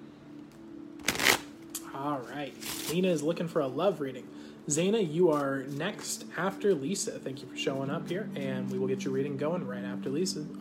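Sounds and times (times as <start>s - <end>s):
faint steady hum: 0.0s - 10.5s
deck of cards being riffle shuffled: 1.0s - 1.5s, 2.5s - 3.0s, 5.3s - 5.8s
speech: 2.0s - 10.5s.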